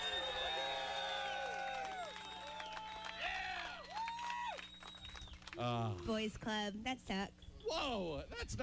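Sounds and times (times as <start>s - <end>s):
audience cheering and whooping for a vote: 0.0s - 5.2s
audience clapping: 0.0s - 6.5s
speech: 5.6s - 8.6s.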